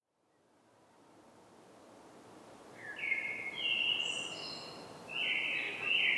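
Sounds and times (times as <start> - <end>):
common blackbird (Turdus merula) song: 2.8 - 6.1.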